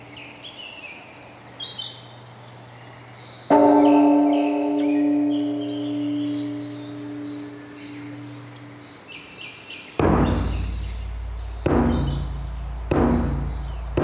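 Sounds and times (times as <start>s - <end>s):
birds chirping and twittering: 0.0s - 14.0s
large Buddhist temple bell struck and booming: 3.5s - 8.9s, 10.0s - 14.0s.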